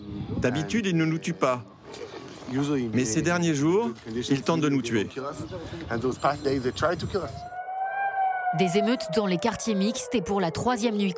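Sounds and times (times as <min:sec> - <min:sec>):
speech: 0:00.4 - 0:07.5, 0:08.5 - 0:11.1
air raid siren wailing: 0:07.4 - 0:11.1.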